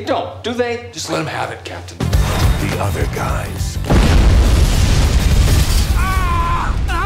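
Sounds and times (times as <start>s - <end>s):
speech: 0.0s - 4.8s
cinematic explosion boom in a movie scene: 3.8s - 7.0s.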